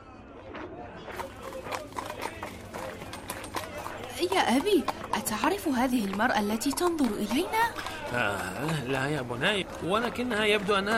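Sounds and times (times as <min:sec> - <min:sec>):
donkey hooves clip-clopping while walking: 0:01.1 - 0:10.9
speech: 0:04.2 - 0:10.9.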